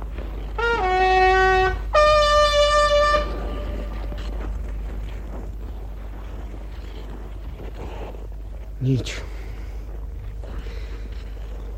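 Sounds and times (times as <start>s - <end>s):
hand-blown horn blasts as a signal call: 0.5s - 4.6s
speech: 8.9s - 9.3s.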